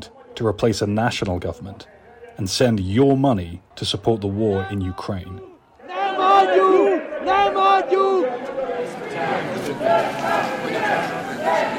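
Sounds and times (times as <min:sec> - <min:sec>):
speech: 0:00.4 - 0:05.5
overlapping shouts and cheering voices of rally crowd: 0:04.3 - 0:11.7
large political rally crowd chanting a slogan in unison in Hungary: 0:05.5 - 0:11.7.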